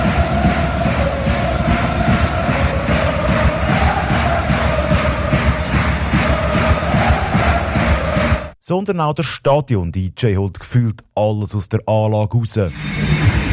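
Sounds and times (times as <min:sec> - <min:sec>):
ice hockey arena crowd roar: 0:00.0 - 0:08.6
speech: 0:08.7 - 0:13.4.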